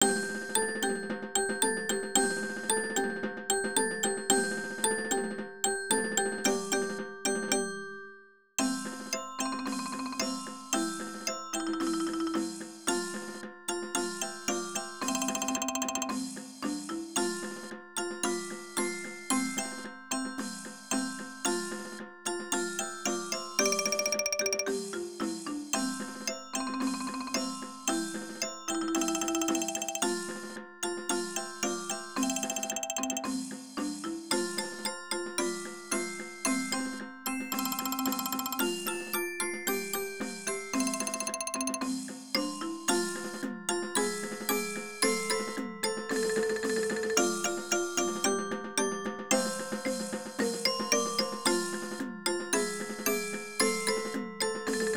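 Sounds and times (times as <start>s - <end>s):
percussion: 0.0s - 54.9s.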